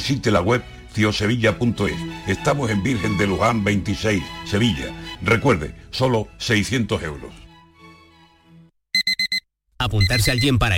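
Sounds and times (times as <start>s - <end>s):
speech: 0.0s - 7.4s, 9.8s - 10.7s
alarm clock beeping: 9.0s - 10.6s.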